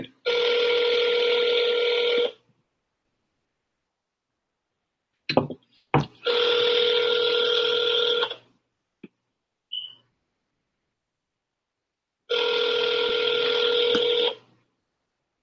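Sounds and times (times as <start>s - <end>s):
phone line ringing out in long electronic bursts: 0.3s - 2.4s, 6.2s - 8.4s, 12.3s - 14.4s.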